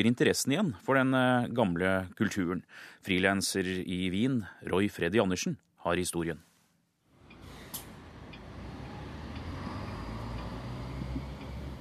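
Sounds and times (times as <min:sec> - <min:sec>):
speech: 0:00.0 - 0:06.5
street traffic rolling past with engines and tyres: 0:07.1 - 0:11.7
air brake hiss: 0:07.3 - 0:10.6.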